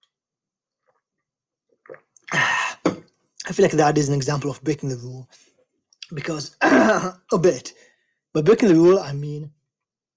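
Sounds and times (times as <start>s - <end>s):
person sipping water: 1.7s - 3.1s
wet mouth and lip noises: 1.8s - 2.3s
speech: 3.5s - 5.5s, 6.1s - 9.6s.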